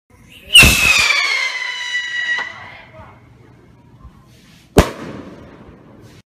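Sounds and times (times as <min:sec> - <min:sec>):
whistling firework rocket: 0:00.5 - 0:02.8.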